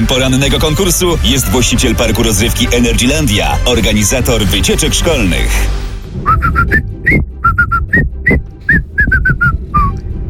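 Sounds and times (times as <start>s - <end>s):
speech: 0.1s - 7.2s
low rumble: 6.2s - 10.2s
person whistling a folk melody: 6.2s - 10.2s.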